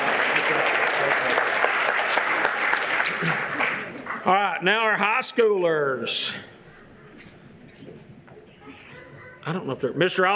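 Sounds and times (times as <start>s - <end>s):
audience applause: 0.0s - 4.5s
speech: 4.2s - 6.6s, 9.5s - 10.3s.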